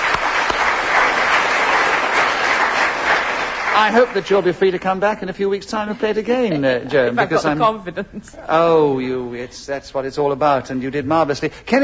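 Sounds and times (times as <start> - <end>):
studio audience applause: 0.0 - 4.8
speech: 3.8 - 11.8.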